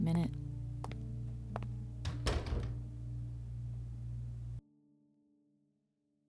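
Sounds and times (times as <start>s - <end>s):
soft tonal background: 0.0s - 4.6s
steady low hum: 0.0s - 4.6s
door thudding shut: 0.4s - 4.6s.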